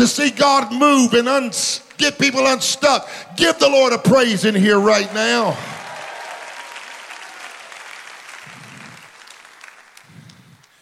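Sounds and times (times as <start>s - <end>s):
speech: 0.0s - 5.8s
large audience clapping: 4.9s - 10.8s.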